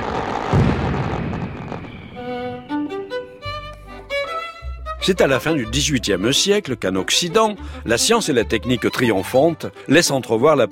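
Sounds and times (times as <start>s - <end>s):
deep firework boom: 0.0s - 3.0s
rumbling crackling of fireworks: 0.0s - 3.2s
bright melodic music phrase: 2.2s - 10.7s
speech: 5.0s - 10.7s.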